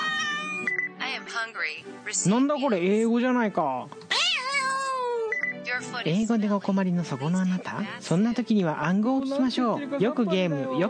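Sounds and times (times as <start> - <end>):
cat meowing: 0.0 - 0.7, 4.1 - 5.3
speech: 1.4 - 4.2, 5.7 - 10.8.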